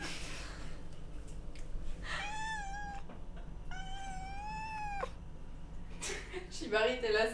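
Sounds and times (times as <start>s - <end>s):
low hum: 0.0s - 7.3s
cat whiny high-pitched meowing: 2.1s - 3.1s, 3.7s - 5.2s
speech: 6.7s - 7.3s.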